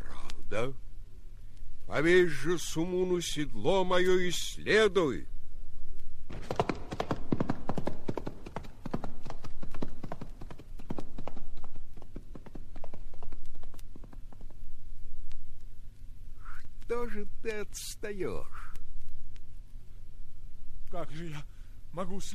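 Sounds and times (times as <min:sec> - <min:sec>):
low steady hum: 0:00.0 - 0:22.3
speech: 0:00.5 - 0:00.8, 0:01.9 - 0:05.3, 0:17.2 - 0:18.7, 0:20.9 - 0:22.3
horse hooves clip-clopping: 0:06.3 - 0:15.5.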